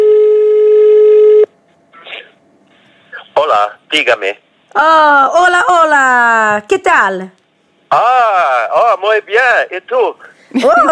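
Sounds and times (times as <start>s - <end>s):
telephone tone as a call is placed: 0.0s - 1.5s
speech: 3.6s - 10.8s.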